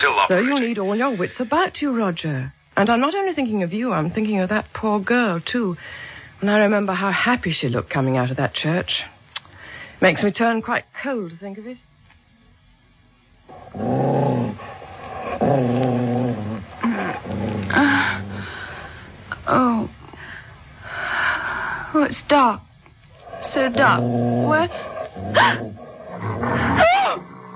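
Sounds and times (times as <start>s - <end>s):
speech: 0.0s - 9.1s, 10.0s - 11.9s, 13.5s - 14.6s, 15.5s - 16.5s, 19.5s - 20.0s, 21.9s - 22.7s, 23.4s - 26.9s
dog growling and snarling: 13.5s - 18.5s, 23.2s - 27.5s.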